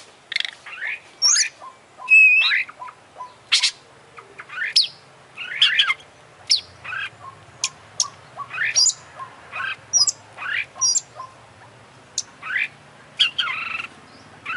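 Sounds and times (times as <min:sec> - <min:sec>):
Oriental magpie-robin singing clear whistles, high chips and buzzy slurs: 0:00.8 - 0:03.8, 0:04.5 - 0:09.0, 0:09.6 - 0:11.1, 0:12.2 - 0:14.5.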